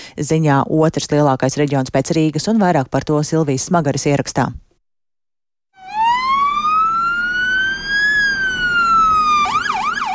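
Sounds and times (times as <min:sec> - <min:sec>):
speech: 0:00.2 - 0:04.6
Volvo FMX 6x6 forest firefighting tanker truck siren wailing at forest fire station in Križi: 0:05.8 - 0:10.1.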